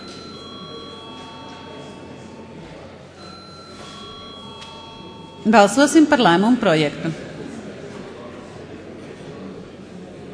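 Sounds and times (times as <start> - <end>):
electric bell ringing in a parliament chamber before a vote: 0.0 - 6.7
speech: 5.4 - 7.3.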